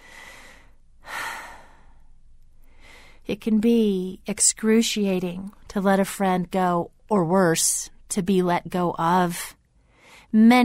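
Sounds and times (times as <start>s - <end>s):
person taking a slow deep breath: 0.0s - 3.2s, 9.8s - 10.3s
speech: 3.3s - 9.6s, 10.3s - 10.6s.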